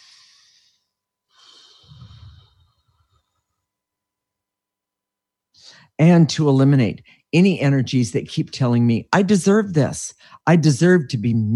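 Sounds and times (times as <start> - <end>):
person taking a breath: 0.0 - 3.5, 5.6 - 6.0, 10.2 - 10.4
speech: 6.0 - 11.5.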